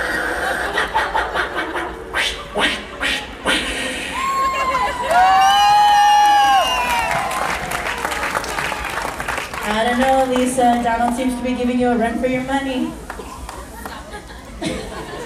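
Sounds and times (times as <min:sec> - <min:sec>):
laughter: 0:00.1 - 0:02.1, 0:04.2 - 0:05.4, 0:13.3 - 0:15.2
Mexican grito shouts and whoops: 0:04.1 - 0:07.5
crowd clapping and cheering: 0:04.2 - 0:11.3, 0:13.0 - 0:14.4
speech: 0:10.9 - 0:13.1.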